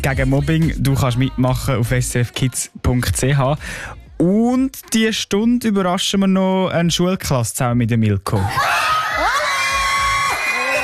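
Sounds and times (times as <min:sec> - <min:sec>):
speech: 0:00.0 - 0:09.4
crowd of children screaming and cheering: 0:08.4 - 0:10.8.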